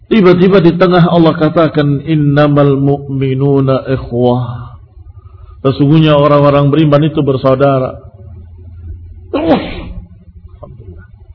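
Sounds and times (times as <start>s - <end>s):
low steady hum: 0.0s - 11.3s
speech: 0.2s - 4.7s, 5.6s - 8.0s, 9.3s - 9.8s
sharp sneeze: 9.4s - 10.0s.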